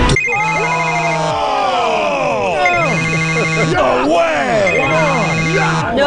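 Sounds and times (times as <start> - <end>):
phone ringtone playing a synthetic melody: 0.1 - 1.2, 2.6 - 5.9
laughter: 0.7 - 6.0.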